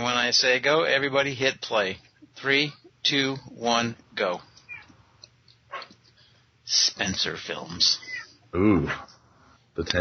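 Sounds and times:
speech: 0.0s - 4.5s, 6.7s - 9.1s, 9.8s - 9.9s
soft noise: 0.0s - 9.9s
cat meowing: 4.7s - 4.9s, 8.0s - 9.0s.

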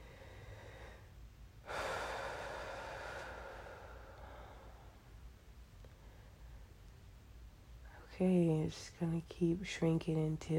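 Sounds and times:
slow breathing during a guided visualisation exercise: 0.0s - 6.8s
speech: 8.2s - 10.5s.

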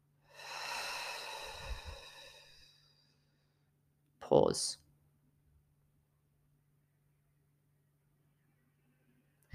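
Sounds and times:
slow meditative breathing in through the nose and out through the mouth: 0.2s - 3.7s
speech: 4.3s - 4.8s.

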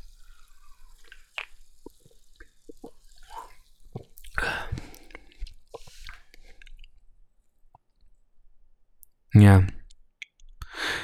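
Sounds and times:
loud slurping gulp: 0.0s - 6.9s
sipping a fizzy watermelon-flavoured soft drink: 0.0s - 7.0s
small liquid drips: 0.0s - 7.0s
swallowing: 0.0s - 7.0s
wet mouth clicks: 1.0s - 7.0s
speech: 9.4s - 9.8s.

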